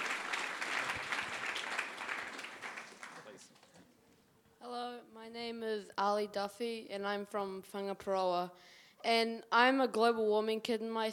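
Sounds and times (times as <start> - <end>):
audience applauding enthusiastically: 0.0 - 3.8
speech: 5.8 - 11.1.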